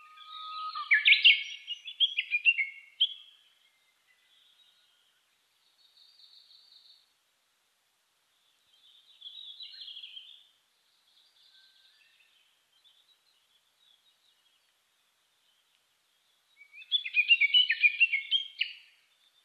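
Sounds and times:
Japanese bush warbler singing: 0.0s - 7.0s, 8.3s - 19.4s.

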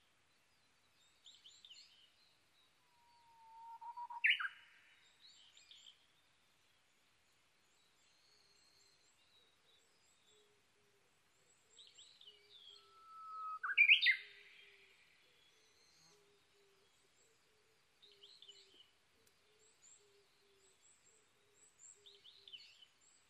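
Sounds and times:
background hiss: 0.0s - 23.2s
Japanese bush warbler whistle phrase: 12.8s - 14.3s.

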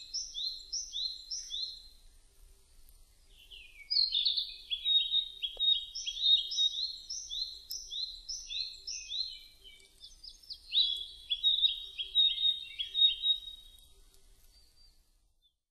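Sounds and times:
Narcissus flycatcher song: 0.0s - 15.6s
faint click: 5.5s - 5.7s, 13.7s - 14.6s.

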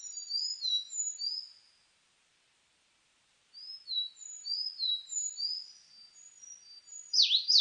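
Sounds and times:
Sakhalin leaf warbler song of thin high whistles and swooping notes: 0.0s - 1.8s, 3.5s - 7.5s.

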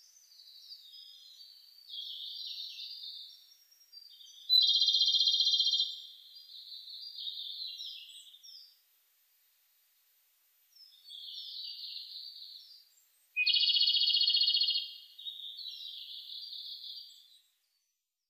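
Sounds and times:
Japanese robin singing: 0.0s - 8.8s, 10.7s - 17.9s.

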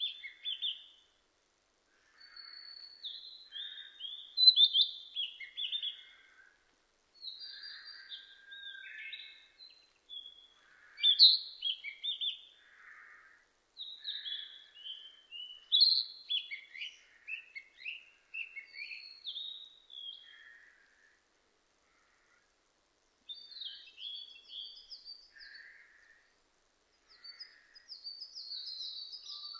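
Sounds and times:
Narcissus flycatcher singing varied whistles and trills: 0.0s - 1.1s, 2.2s - 6.2s, 7.2s - 12.5s, 13.8s - 20.3s, 23.3s - 25.6s, 27.1s - 29.5s.

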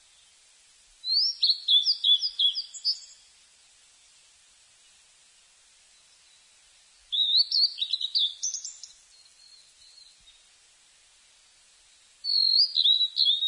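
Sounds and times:
blue-and-white flycatcher whistled song: 1.0s - 3.2s, 7.1s - 10.4s, 12.0s - 13.4s.

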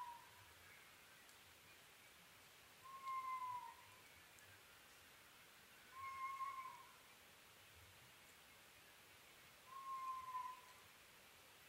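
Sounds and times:
faint background hiss: 0.0s - 11.6s
Oriental scops owl hooting at night: 2.8s - 4.0s, 5.9s - 7.0s, 9.7s - 10.8s.

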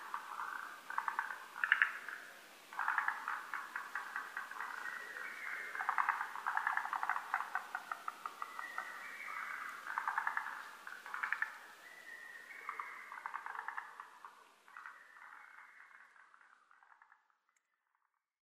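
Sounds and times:
lesser cuckoo-type bird staccato calls: 0.0s - 16.2s.

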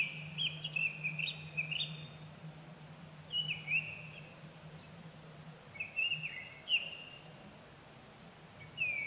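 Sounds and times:
Japanese thrush singing whistled phrases: 0.0s - 2.2s, 3.3s - 4.3s, 5.7s - 7.3s, 8.6s - 9.0s
steady low hum: 0.0s - 8.8s.

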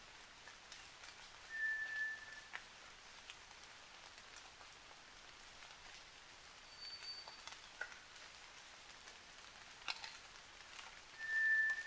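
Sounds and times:
White's thrush giving thin whistles that alternate in pitch at night: 1.5s - 2.5s, 11.2s - 11.8s.

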